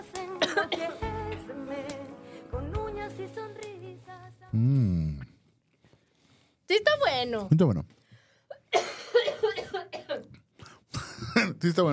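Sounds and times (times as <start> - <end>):
person coughing: 0.4 - 1.0, 8.8 - 10.2
speech: 0.5 - 1.5, 3.2 - 5.3, 6.7 - 8.0, 11.6 - 11.9.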